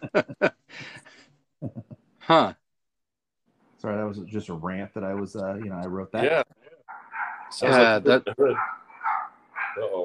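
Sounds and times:
speech: 0.2s - 0.9s, 2.3s - 2.6s, 4.1s - 6.5s, 7.5s - 8.7s, 9.8s - 10.0s
quieter voices murmuring: 4.9s - 10.0s
small dog barking: 6.9s - 7.8s, 8.5s - 9.9s.

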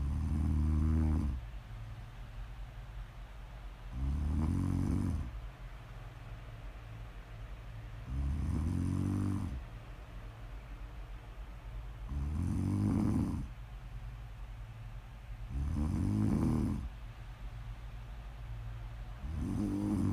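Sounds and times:
deep rumbling raspy breathy snores: 0.0s - 1.4s, 3.9s - 5.4s, 8.0s - 9.6s, 12.1s - 13.6s, 15.5s - 16.9s, 19.2s - 20.1s
low constant hum: 0.0s - 20.1s.

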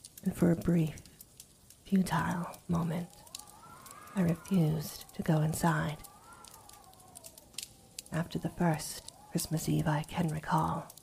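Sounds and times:
fireplace crackling with snaps and pops: 0.0s - 11.0s
soft steady hum: 0.0s - 11.0s
speech: 0.2s - 1.0s, 1.9s - 3.2s, 4.2s - 6.1s, 8.1s - 11.0s
faint whistling tone: 2.2s - 9.8s.

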